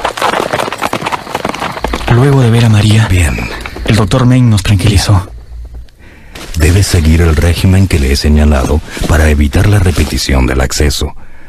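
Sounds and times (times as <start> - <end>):
horse hooves clip-clopping as rider departs: 0.0 - 4.4, 5.6 - 10.3
speech: 2.1 - 5.3, 6.6 - 11.3.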